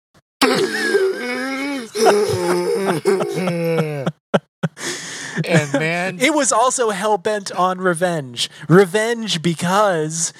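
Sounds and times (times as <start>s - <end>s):
human voice imitating breathing of a captive alien creature: 0.4s - 4.1s
laughter: 0.4s - 4.8s, 5.4s - 6.2s
speech: 2.9s - 10.3s.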